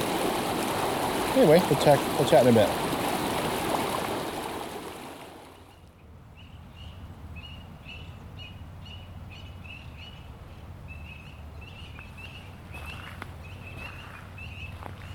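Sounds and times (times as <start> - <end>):
small brook babbling and trickling: 0.0 - 5.9
speech: 1.4 - 3.0
bird repeating short high chirping calls: 5.7 - 10.3, 10.9 - 15.1.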